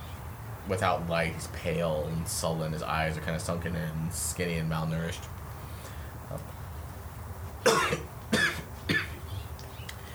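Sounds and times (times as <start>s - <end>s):
speech: 0.7s - 5.4s, 6.3s - 6.5s
pale malnourished young man giving short dry coughs: 7.6s - 9.2s.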